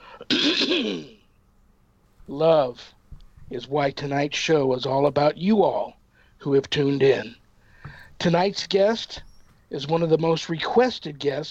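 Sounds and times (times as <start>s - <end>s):
person clearing throat: 0.2s - 1.2s
speech: 0.7s - 1.2s, 2.3s - 7.4s, 8.2s - 11.5s.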